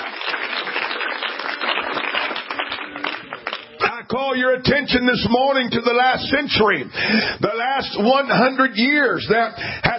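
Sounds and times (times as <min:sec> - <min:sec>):
crowd clapping: 0:00.0 - 0:04.0
speech: 0:04.1 - 0:09.9.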